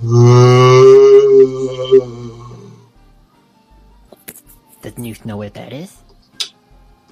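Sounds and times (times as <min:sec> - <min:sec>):
speech: 0:00.0 - 0:00.4, 0:05.0 - 0:06.1
person imitating strange moaning from deep in the swamps: 0:00.0 - 0:02.9.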